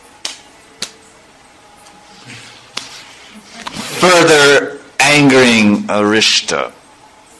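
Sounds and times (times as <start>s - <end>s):
palms slapping arms: 0.2s - 1.0s, 1.8s - 3.9s
speech: 2.2s - 2.6s, 5.2s - 6.8s
soft dull pats: 2.7s - 3.8s.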